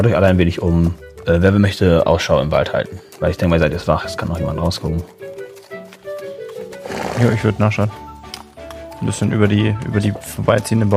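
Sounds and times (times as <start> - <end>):
speech: 0.0 - 5.4, 7.2 - 8.0, 9.0 - 10.9
hooves clip-clopping: 0.0 - 10.9
horse whinnying in a forest: 5.2 - 7.7.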